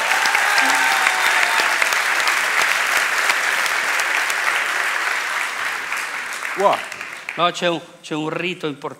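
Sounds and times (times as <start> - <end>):
crowd applauding: 0.0 - 7.7
speech: 6.6 - 8.9.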